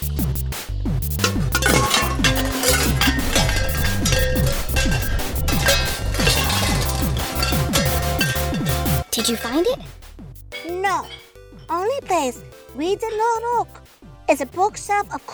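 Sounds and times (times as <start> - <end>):
pots and pans clattering while being rummaged through: 1.2 - 9.7, 10.6 - 11.4
speech: 9.2 - 10.0, 10.9 - 15.3.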